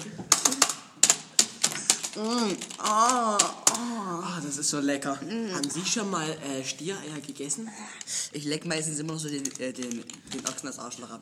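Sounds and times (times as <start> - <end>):
computer keyboard typing with plastic key clicks: 0.0 - 4.0, 9.0 - 10.8
speech: 2.2 - 11.2.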